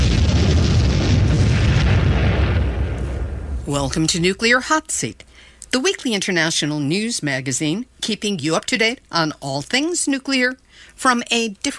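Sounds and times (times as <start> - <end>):
bomb explosion sound effect: 0.0 - 4.3
speech: 3.7 - 11.7.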